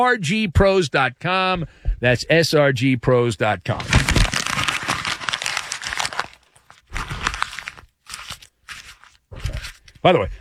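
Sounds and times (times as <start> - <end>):
speech: 0.0 - 4.0, 10.0 - 10.3
paper being folded and crumpled in a studio: 3.5 - 10.1.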